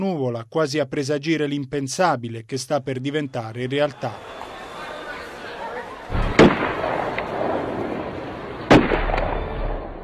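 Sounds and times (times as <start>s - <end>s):
speech: 0.0s - 4.5s
steady murmur: 3.5s - 9.9s
repeated dull gunshots from a firearm: 6.1s - 8.0s, 8.6s - 10.0s.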